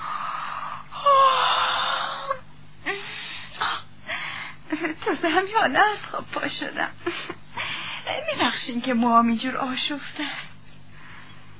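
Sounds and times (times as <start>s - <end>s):
person acting out a yawn: 0.0s - 2.4s
speech: 4.8s - 7.3s, 8.1s - 10.4s.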